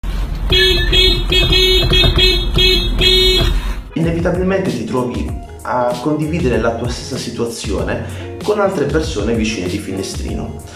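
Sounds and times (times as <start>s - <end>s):
car horn honking: 0.4s - 3.9s
speech: 4.0s - 10.7s.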